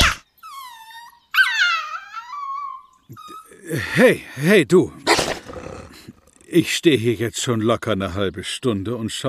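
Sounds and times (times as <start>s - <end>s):
video game wolf yelping high-pitched as it is kicked: 0.0s - 3.6s, 5.0s - 6.0s
speech: 3.1s - 5.0s, 6.5s - 9.2s.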